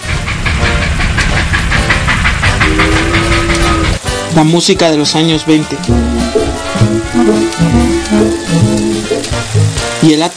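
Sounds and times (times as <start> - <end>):
train rumbling along the rails: 0.0 - 10.0
speech: 4.4 - 8.3, 10.0 - 10.3.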